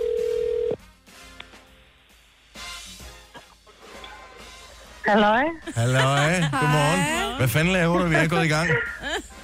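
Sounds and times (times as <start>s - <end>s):
international phone call ringing tone: 0.0s - 0.8s
speech: 5.0s - 9.3s
laughter: 5.4s - 9.4s.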